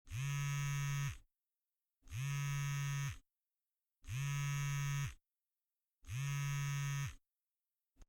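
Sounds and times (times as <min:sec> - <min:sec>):
cellphone vibrating: 0:00.1 - 0:01.3, 0:02.1 - 0:03.2, 0:04.0 - 0:05.2, 0:06.0 - 0:07.2.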